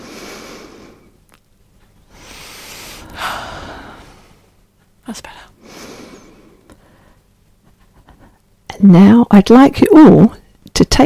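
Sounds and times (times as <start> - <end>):
deep breaths taken to relax: 0.0 - 1.2, 2.0 - 4.6, 5.2 - 7.3
speech: 5.1 - 5.6, 8.8 - 10.4.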